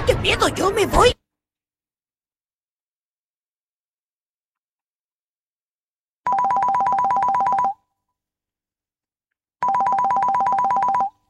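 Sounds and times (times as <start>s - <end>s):
speech: 0.2s - 1.2s
telephone ringing with an incoming call: 6.3s - 7.9s, 9.6s - 11.2s.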